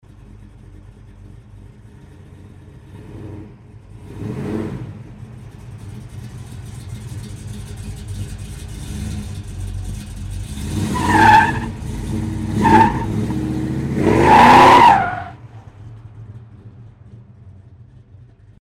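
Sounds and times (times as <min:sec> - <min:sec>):
car engine starting: 0:00.0 - 0:18.6
tires squealing as car drives off: 0:05.8 - 0:17.2.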